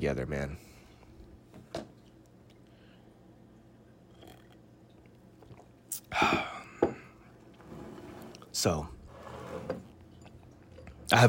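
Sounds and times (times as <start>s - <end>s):
speech: 0.0s - 0.7s, 8.6s - 9.0s
soft steady background: 0.0s - 11.2s
quiet sips of hot coffee: 4.1s - 5.7s.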